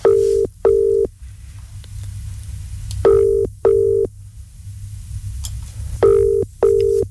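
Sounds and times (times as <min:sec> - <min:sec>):
ringback tone of an outgoing phone call: 0:00.0 - 0:01.1, 0:03.1 - 0:04.1, 0:06.0 - 0:07.0
low hum: 0:00.0 - 0:07.0.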